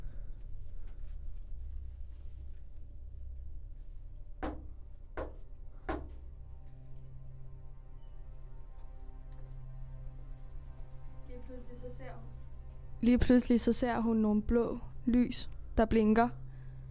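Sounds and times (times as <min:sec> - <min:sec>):
knocking: 0:04.4 - 0:06.2
speech: 0:11.5 - 0:12.4, 0:13.0 - 0:16.4.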